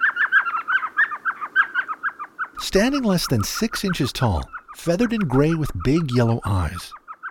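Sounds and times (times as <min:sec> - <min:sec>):
elf owl calling from a hole in a sycamore along a dry West Texas stream bed: 0:00.0 - 0:02.6, 0:06.9 - 0:07.2
speech: 0:02.6 - 0:07.0.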